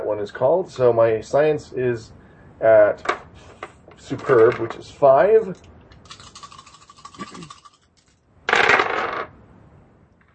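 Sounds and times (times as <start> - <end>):
speech: 0.1 - 5.7
dice rolled during a tabletop role-playing game: 6.0 - 9.3.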